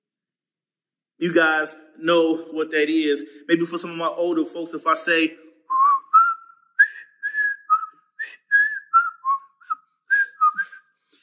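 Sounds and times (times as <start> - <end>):
speech: 1.2 - 5.4
person whistling a TV show theme tune: 5.7 - 11.2.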